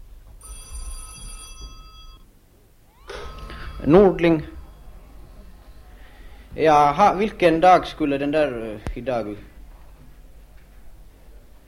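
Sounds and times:
telephone bell ringing: 0.4 - 2.3, 2.9 - 7.4
speech: 3.8 - 4.6, 6.6 - 9.5.

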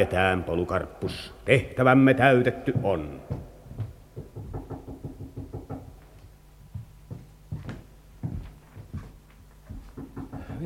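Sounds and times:
speech: 0.0 - 3.4
hollow knocking on a wooden coffin lid: 4.2 - 5.9, 9.9 - 10.6.

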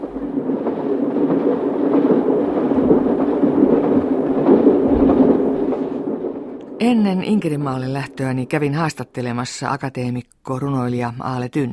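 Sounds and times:
train rolling along its rails in midsummer daylight: 0.0 - 9.4
speech: 6.8 - 11.7.

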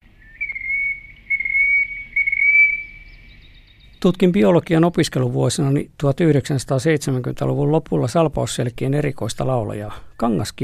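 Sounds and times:
Terek sandpiper whistling calls: 0.1 - 4.0
speech: 4.0 - 10.6.

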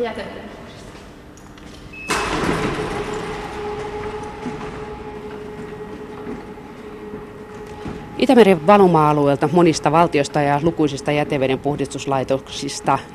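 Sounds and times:
speech: 0.0 - 0.7, 8.2 - 13.1
faint motor whine: 0.4 - 13.1
sheet-metal roll-up door rattling open in underground bedrock tunnels: 2.1 - 9.9.

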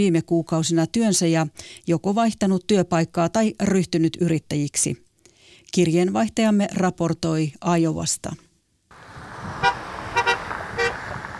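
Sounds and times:
speech: 0.0 - 5.0, 5.7 - 8.4
traffic hum: 8.9 - 11.3
passing cars honking horns in support of striking workers: 9.5 - 11.3.

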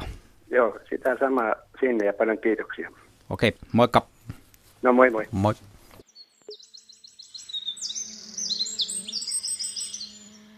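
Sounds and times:
speech: 0.5 - 4.1, 4.8 - 5.7
Eurasian wren song with rapid high notes and shrill trills: 6.0 - 10.5.

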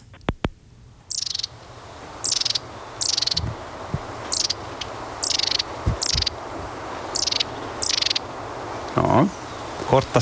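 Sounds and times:
marsh tit calling in short high chirpy bursts: 1.1 - 10.2
low thumps: 3.3 - 4.3, 5.8 - 6.8
speech: 9.0 - 10.2.

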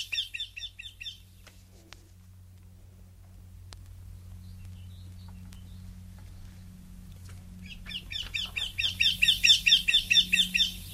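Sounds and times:
Eurasian wryneck calling: 0.0 - 1.3, 7.6 - 10.9
low steady hum: 0.0 - 10.9.

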